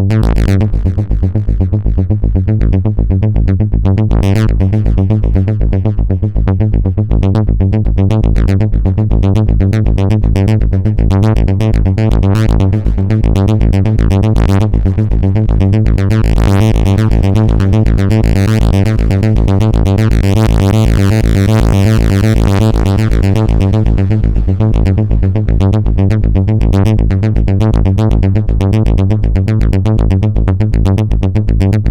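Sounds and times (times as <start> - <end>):
Oberheim Matrix-6R synthesizer arpeggio with Logic delay effect: 0.1 - 31.7.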